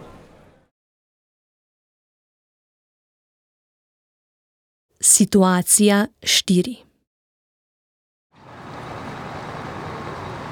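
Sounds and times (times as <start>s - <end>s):
speech: 5.0s - 6.9s
street traffic roar at a bus stop: 8.4s - 10.4s.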